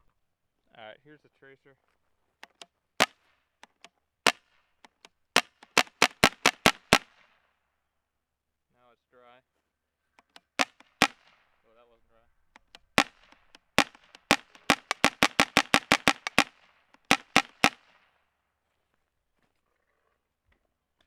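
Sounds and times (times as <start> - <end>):
shotgun: 5.4 - 7.3, 10.6 - 11.4, 12.9 - 18.0.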